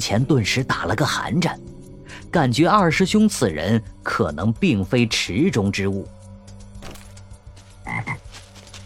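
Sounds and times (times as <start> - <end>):
speech: 0.0 - 6.2
toad croaking among dense forest trees: 7.8 - 8.3.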